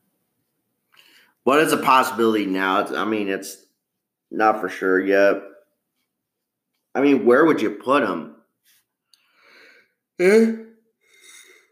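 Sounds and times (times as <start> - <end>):
speech: 1.4 - 3.6, 4.3 - 5.5, 7.0 - 8.4, 10.2 - 10.6
person yawning: 10.2 - 11.7.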